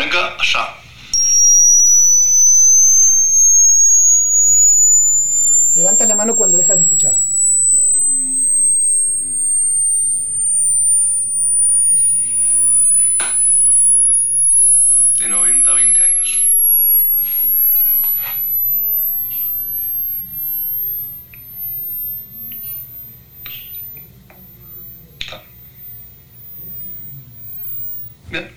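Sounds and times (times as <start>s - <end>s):
speech: 0.2s - 0.8s
thin piercing pure tone rising in pitch: 1.2s - 28.2s.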